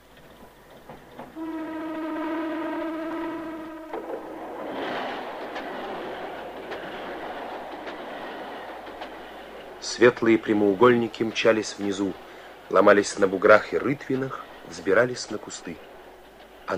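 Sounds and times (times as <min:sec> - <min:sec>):
train wheels clacking over rail joints: 0:00.0 - 0:01.7, 0:02.8 - 0:16.7
train rumble: 0:00.0 - 0:16.7
long steady train horn: 0:01.3 - 0:04.4
speech: 0:09.9 - 0:15.9.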